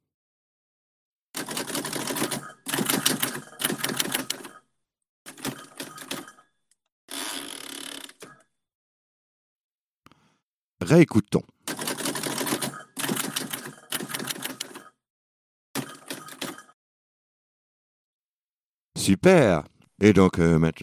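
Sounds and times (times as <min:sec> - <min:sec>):
typewriter typing: 0:01.4 - 0:04.6, 0:05.3 - 0:06.4, 0:11.7 - 0:14.9, 0:15.8 - 0:16.8
speech: 0:10.8 - 0:11.6, 0:19.1 - 0:20.8.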